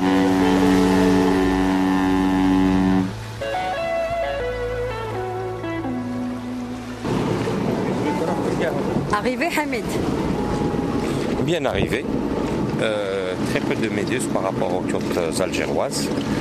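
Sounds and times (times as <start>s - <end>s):
boat engine droning while docking at an island: 0.0s - 16.3s
rushing water: 0.0s - 16.3s
speech: 9.2s - 10.2s, 11.5s - 12.2s, 12.8s - 16.3s.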